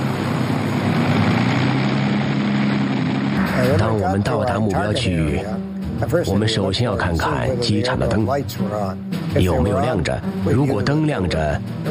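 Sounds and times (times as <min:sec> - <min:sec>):
de Havilland Mosquito bomber aircraft engines droning: 0:00.0 - 0:06.0
speech: 0:03.8 - 0:11.8.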